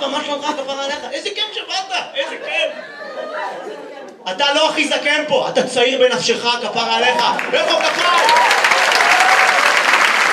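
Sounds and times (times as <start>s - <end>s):
speech: 0.0s - 3.6s, 4.2s - 9.2s
laughter: 0.0s - 4.1s
audience applause at a gathering: 7.0s - 10.3s.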